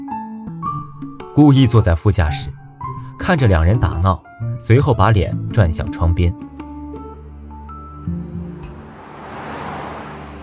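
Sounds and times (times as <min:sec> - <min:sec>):
speech: 0:01.4 - 0:02.6, 0:03.2 - 0:06.5
road noise of a car driving through streets: 0:07.2 - 0:10.4
car engine rumble while driving through streets: 0:07.6 - 0:10.4.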